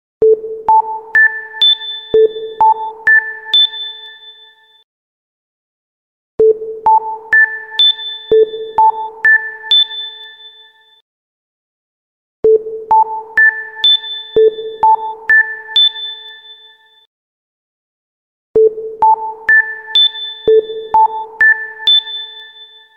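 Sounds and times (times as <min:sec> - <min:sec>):
sine tone: 0:00.3 - 0:04.9, 0:06.5 - 0:11.0, 0:12.6 - 0:17.1, 0:18.7 - 0:22.9.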